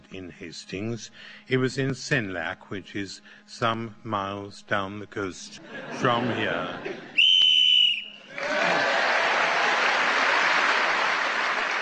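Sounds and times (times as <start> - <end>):
speech: 0.1 - 7.1
laughter: 5.6 - 7.2, 8.3 - 11.7
game-show timer whistle blast: 7.2 - 8.3
warm applause: 8.3 - 11.7.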